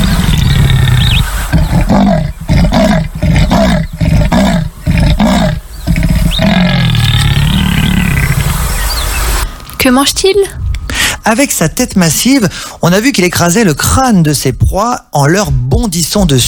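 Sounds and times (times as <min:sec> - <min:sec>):
jaguar roaring with rasping, sawing grunts: 0:00.0 - 0:08.6
jaguar's deep, rumbling breaths: 0:00.0 - 0:08.8
steady noise: 0:00.0 - 0:16.4
speech: 0:09.8 - 0:10.6, 0:11.2 - 0:16.4.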